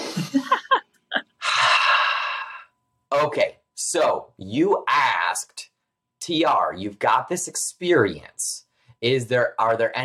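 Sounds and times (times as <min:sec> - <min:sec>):
laughter: 0:00.0 - 0:01.2
deep breath drawn in: 0:01.4 - 0:02.7
speech: 0:03.2 - 0:05.7, 0:06.3 - 0:10.0.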